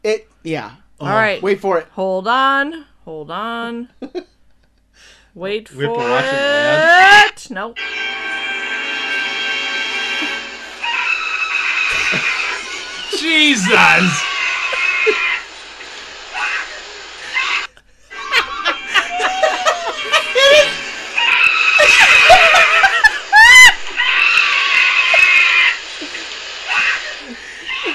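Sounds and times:
speech: 0.0s - 4.3s, 5.0s - 8.1s, 13.2s - 14.3s
frantic laughter-like cries: 5.8s - 7.2s, 10.1s - 27.9s
loud high-pitched terrified scream: 10.1s - 27.9s.

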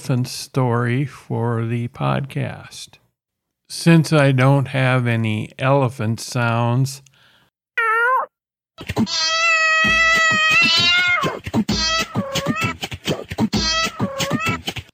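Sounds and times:
speech: 0.0s - 3.0s, 3.7s - 7.1s, 8.8s - 13.7s
cat meowing: 7.8s - 8.3s, 9.0s - 12.7s, 13.6s - 14.6s.

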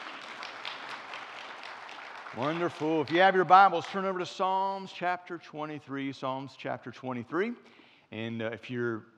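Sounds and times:
church audience applause: 0.0s - 3.5s
speech: 2.4s - 9.1s.

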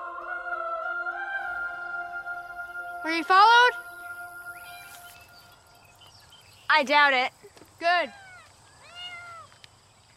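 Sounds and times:
speech: 3.0s - 3.8s, 6.7s - 8.2s
cat meowing: 8.1s - 9.5s.

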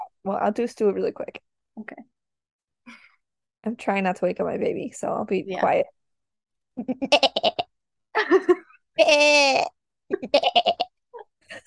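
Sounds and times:
speech: 0.2s - 2.1s, 3.6s - 6.0s, 6.8s - 7.6s, 8.3s - 10.9s
person imitating goat bleats: 7.0s - 7.7s, 9.0s - 10.9s.

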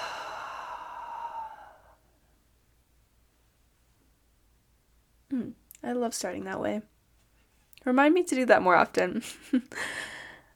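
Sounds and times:
person exhaling deeply during a guided breathing exercise: 0.0s - 2.2s
speech: 5.9s - 6.9s, 7.8s - 10.1s.

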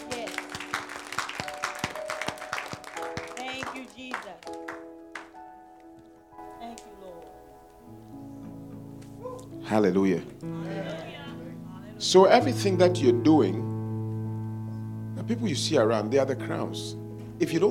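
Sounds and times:
audience clapping: 0.0s - 5.4s
speech: 4.0s - 4.6s, 9.7s - 10.7s, 12.0s - 13.7s, 15.3s - 17.6s.

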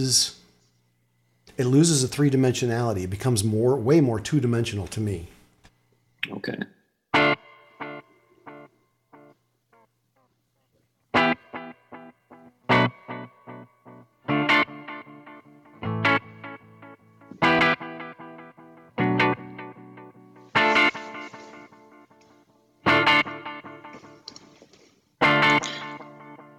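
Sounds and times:
speech: 0.0s - 0.4s, 1.6s - 5.4s, 6.2s - 6.7s
surf-style electric guitar through a reverb pedal: 7.1s - 10.3s, 11.1s - 26.5s.

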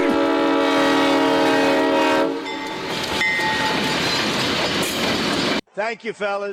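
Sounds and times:
train horn: 0.0s - 2.8s
train rolling past: 0.0s - 5.6s
speech: 5.8s - 6.5s.

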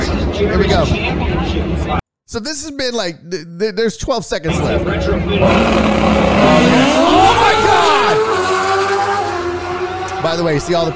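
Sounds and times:
speech: 0.4s - 8.2s, 10.2s - 10.9s
racing motorbikes roaring past at a race event: 5.4s - 10.9s.

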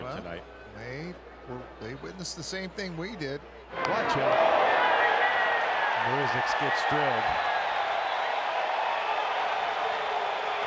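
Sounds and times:
speech: 0.1s - 4.6s, 6.0s - 7.5s
large stadium crowd roaring and cheering at baseball game: 3.7s - 10.6s.

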